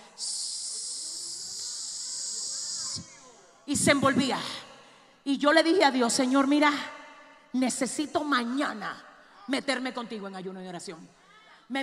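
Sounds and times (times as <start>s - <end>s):
voice imitating a rattlesnake's rattle: 0.3s - 3.4s
speech: 3.7s - 4.6s, 5.2s - 11.8s.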